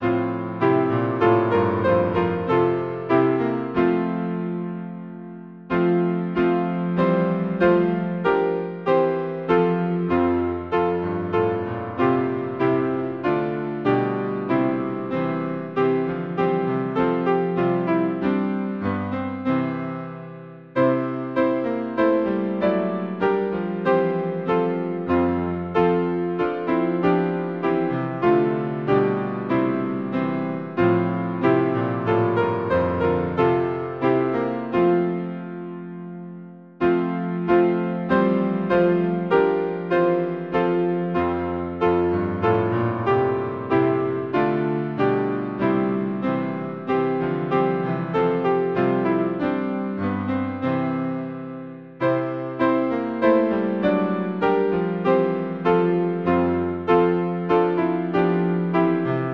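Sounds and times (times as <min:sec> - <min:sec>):
hymn played on piano: 0:00.0 - 0:59.3.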